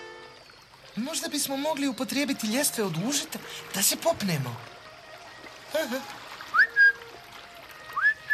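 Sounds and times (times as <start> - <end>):
speech: 1.0 - 4.8, 5.8 - 6.2
person whistling: 5.8 - 7.0, 8.0 - 8.3.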